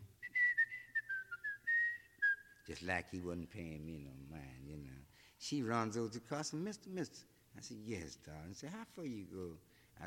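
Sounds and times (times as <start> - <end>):
person whistling: 0.0 - 2.7
speech: 2.7 - 10.0.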